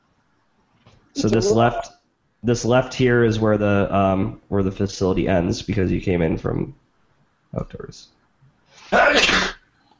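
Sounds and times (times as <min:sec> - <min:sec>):
speech: 0:01.2 - 0:06.8, 0:07.5 - 0:08.2, 0:08.8 - 0:09.6
person sneezing: 0:08.9 - 0:09.6.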